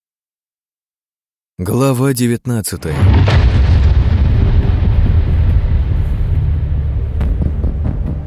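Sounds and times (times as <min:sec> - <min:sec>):
speech: 0:01.6 - 0:03.6
distant explosion rumble in a city: 0:02.9 - 0:08.2.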